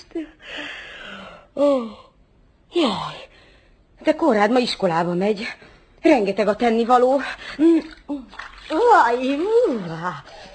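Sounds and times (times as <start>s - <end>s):
speech: 0.0s - 0.6s, 1.6s - 2.0s, 2.7s - 3.2s, 4.0s - 10.5s
cold running tap water as someone washes: 7.6s - 10.2s.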